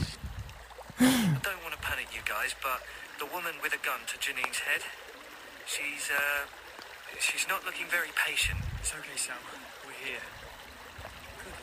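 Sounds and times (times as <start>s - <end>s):
rushing river water: 0.0s - 11.6s
speech: 1.0s - 5.1s, 5.7s - 10.5s.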